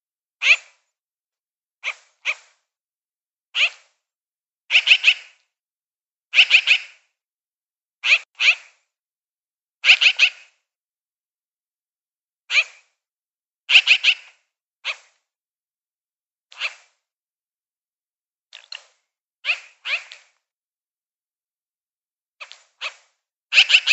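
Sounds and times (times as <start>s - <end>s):
magpie chirps: 0.4s - 0.8s, 1.8s - 2.6s, 3.6s - 3.9s, 4.7s - 5.4s, 6.3s - 7.0s, 8.0s - 8.8s, 9.8s - 10.6s, 12.5s - 12.9s, 13.7s - 15.2s, 16.6s - 16.9s, 19.4s - 20.4s, 22.4s - 23.9s.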